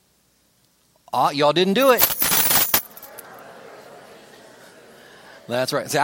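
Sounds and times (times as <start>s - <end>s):
faint hiss: 0.0s - 6.0s
speech: 1.1s - 2.1s, 5.5s - 6.0s
set of work keys jangling: 1.8s - 3.1s
laughter: 2.8s - 6.0s.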